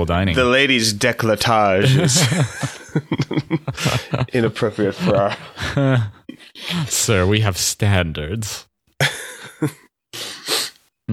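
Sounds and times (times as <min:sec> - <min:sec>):
speech: 0:00.0 - 0:08.7, 0:09.6 - 0:10.2
laughter: 0:01.7 - 0:06.4, 0:09.0 - 0:09.9
person sniffling: 0:10.1 - 0:10.9.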